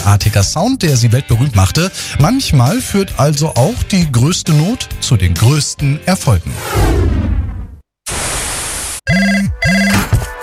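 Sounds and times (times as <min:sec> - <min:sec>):
speech: 0:00.0 - 0:07.4, 0:09.1 - 0:10.0
static hiss: 0:08.1 - 0:09.0
telephone ringing for an incoming call: 0:09.1 - 0:10.2.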